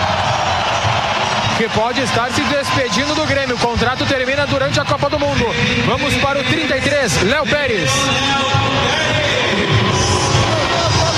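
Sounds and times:
large stadium crowd booing: 0.0s - 4.7s, 7.7s - 11.1s
speech: 1.6s - 9.8s.

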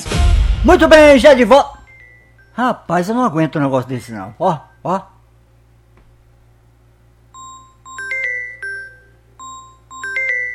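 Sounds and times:
speech: 0.6s - 1.8s, 2.6s - 5.1s
telephone ringing with a melodic electronic chime: 7.3s - 10.5s.

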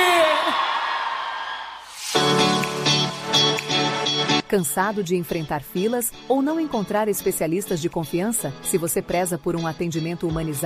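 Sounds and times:
whoops: 0.0s - 1.9s
crowd shouting and cheering for a cowgirl: 0.0s - 3.0s
crowd applauding for a cowgirl: 0.0s - 3.9s
speech: 4.5s - 10.6s.

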